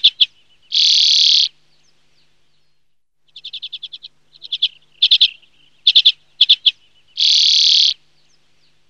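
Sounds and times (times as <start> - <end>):
common redpoll chattering calls: 0.0 - 1.5, 3.3 - 8.0.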